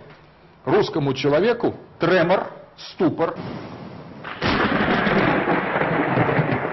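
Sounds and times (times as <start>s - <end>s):
speech: 0.6s - 3.8s
loud thunder crack and rumble: 4.2s - 6.7s
steady rainfall: 4.3s - 6.7s.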